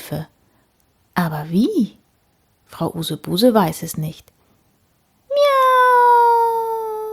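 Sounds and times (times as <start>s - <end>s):
speech: 0.1s - 0.4s, 1.2s - 2.0s, 2.7s - 4.4s
spotted cat stuck up in a tree meowing: 5.3s - 7.1s.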